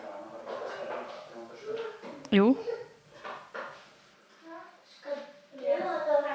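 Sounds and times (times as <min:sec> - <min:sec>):
faint household clatter: 0:00.0 - 0:06.3
speech: 0:02.3 - 0:02.8
children chattering indistinctly: 0:02.4 - 0:03.0, 0:04.5 - 0:06.3.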